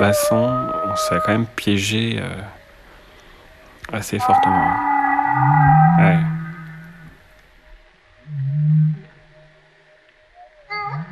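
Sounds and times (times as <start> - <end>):
speech: 0.0 - 2.6, 3.9 - 6.3
humpback whale low drawn-out moan: 0.0 - 2.8, 4.1 - 7.2, 8.2 - 9.6, 10.4 - 11.0
humpback whale rising upsweep call: 0.0 - 3.1, 4.1 - 11.0.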